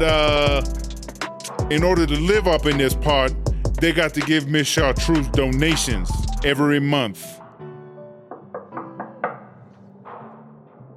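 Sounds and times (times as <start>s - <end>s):
speech: 0.0s - 0.8s, 1.7s - 7.4s
knocks on a wooden door of an inmate's quarters in an old prison: 8.3s - 9.5s.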